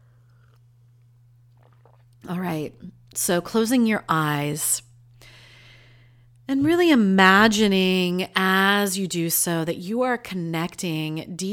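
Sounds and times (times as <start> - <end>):
steady low electrical hum: 0.0 - 11.5
person slurping a hot drink: 1.4 - 2.3
speech: 2.2 - 4.9, 6.5 - 11.5.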